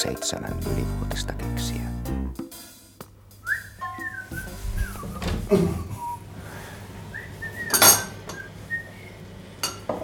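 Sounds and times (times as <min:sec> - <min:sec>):
speech: 0:00.0 - 0:02.6
person whistling a wandering tune: 0:03.4 - 0:06.4, 0:07.1 - 0:09.2
dishes and cutlery clinking as a table is set for morning coffee: 0:07.6 - 0:08.5, 0:09.6 - 0:10.0.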